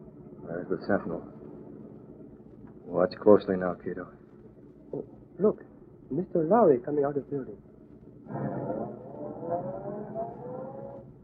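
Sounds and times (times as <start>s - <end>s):
speech: 0.5s - 1.4s, 2.9s - 4.2s, 4.9s - 7.7s, 8.3s - 9.7s
roadster engine roaring as the car pulls away: 8.3s - 11.1s.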